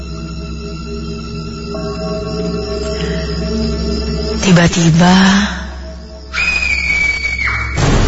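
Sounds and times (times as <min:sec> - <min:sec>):
speech: 0:01.7 - 0:05.6
loud piercing high-pitched scream: 0:06.3 - 0:07.9.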